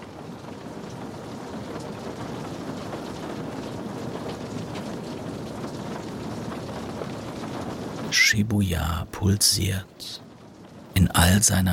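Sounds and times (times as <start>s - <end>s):
heavy rain hammering surfaces in a storm: 0.0s - 11.7s
speech: 8.1s - 10.3s, 11.1s - 11.7s.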